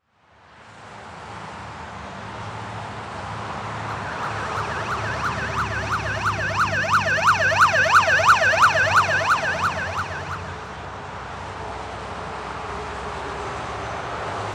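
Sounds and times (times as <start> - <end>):
city traffic: 3.9 - 10.6
police car siren passing by in city traffic: 3.9 - 10.7.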